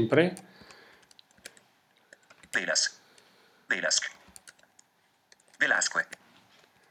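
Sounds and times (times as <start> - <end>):
speech: 0.0 - 0.5, 2.5 - 3.0, 3.7 - 4.2, 5.6 - 6.2
typing on a computer keyboard: 0.6 - 2.6, 4.2 - 6.2.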